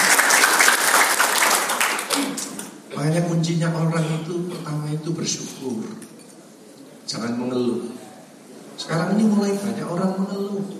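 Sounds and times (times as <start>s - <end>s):
audience applause at a religious lecture: 0.0s - 2.6s
speech: 3.0s - 6.2s, 7.1s - 7.9s, 8.8s - 10.7s.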